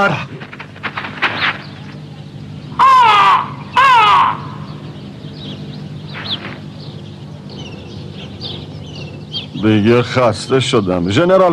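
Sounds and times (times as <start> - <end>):
speech: 0.0 - 0.6, 9.6 - 11.5
bird chirps: 0.0 - 11.5
crow cawing: 2.7 - 4.9.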